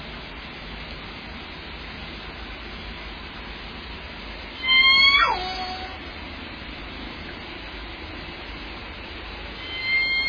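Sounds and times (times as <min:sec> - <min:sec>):
low hiss: 0:00.0 - 0:10.2
orca call with harmonic tone sweeping downward in pitch: 0:04.6 - 0:06.0, 0:09.6 - 0:10.2.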